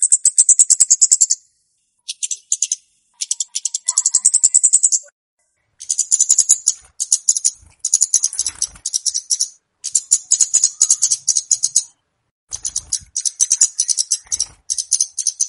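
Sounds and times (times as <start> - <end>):
flowerpecker giving rattling lure calls: 0.0 - 5.1, 5.8 - 15.4.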